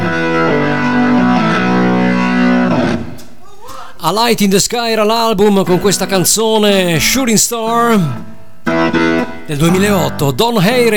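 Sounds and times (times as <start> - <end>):
loud distorted rock keyboard playing sustained chords: 0.0 - 3.2, 8.1 - 10.9
speech: 4.1 - 10.9.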